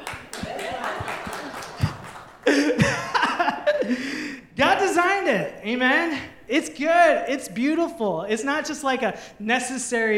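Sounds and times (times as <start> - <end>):
cheering: 0.0 - 2.2
audience applause: 0.0 - 2.5
laughter: 0.0 - 4.0
speech: 4.8 - 10.1.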